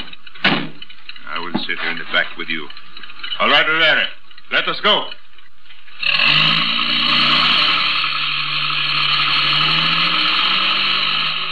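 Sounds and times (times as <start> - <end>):
speech: 1.7 - 2.8, 3.4 - 5.2
truck engine starting and pulling away: 5.9 - 11.5.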